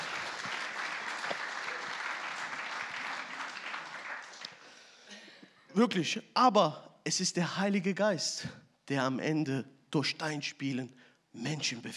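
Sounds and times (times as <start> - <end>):
audience applause for a bass player: 0.0 - 4.8
speech: 5.8 - 11.9.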